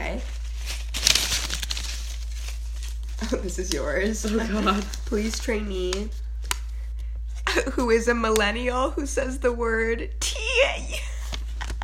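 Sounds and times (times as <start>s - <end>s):
paper crinkling: 0.0s - 7.0s
low steady hum: 0.0s - 11.8s
speech: 3.3s - 6.2s, 7.6s - 11.0s.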